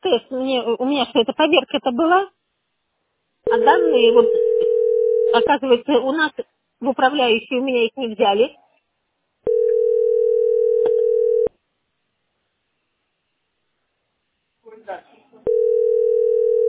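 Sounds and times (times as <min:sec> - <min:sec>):
speech: 0:00.1 - 0:02.4, 0:03.5 - 0:08.6, 0:14.7 - 0:15.7
telephone line tone while holding in a call queue: 0:03.5 - 0:05.5, 0:09.5 - 0:11.5, 0:15.5 - 0:16.6.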